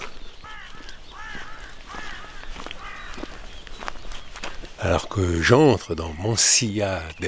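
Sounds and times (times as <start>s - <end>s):
crow cawing: 0.0s - 3.6s
speech: 4.8s - 7.2s.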